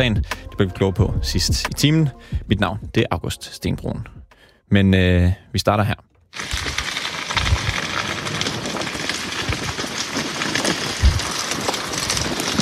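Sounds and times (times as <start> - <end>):
soft low thumps and pops: 0.0 - 3.1, 4.0 - 4.4
speech: 0.0 - 6.5
wildfire burning through forest floor debris south of Paris France: 6.3 - 12.5.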